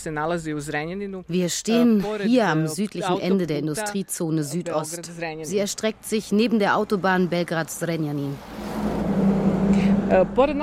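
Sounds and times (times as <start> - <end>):
speech: 0.0 - 8.8, 10.1 - 10.6
truck engine rumble on a road beside a highway in an industrial zone: 6.2 - 10.6.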